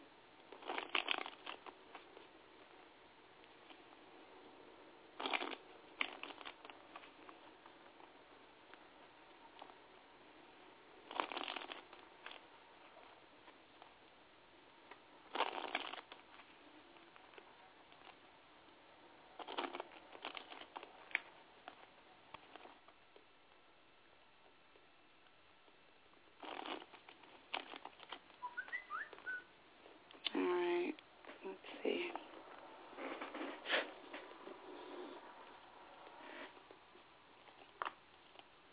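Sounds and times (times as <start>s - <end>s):
soft rustling of cards: 0.0s - 38.7s
tarot cards shuffled by hand: 0.6s - 2.2s, 5.2s - 8.1s, 11.1s - 12.5s, 15.3s - 16.5s, 19.4s - 23.0s, 26.4s - 29.4s.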